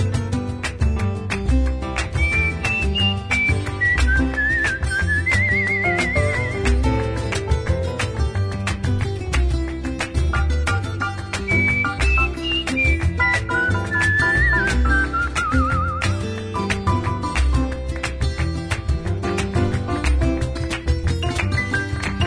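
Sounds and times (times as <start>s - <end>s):
instrumental music: 0.0s - 22.2s
person whistling a melody: 2.2s - 6.8s, 11.4s - 16.2s.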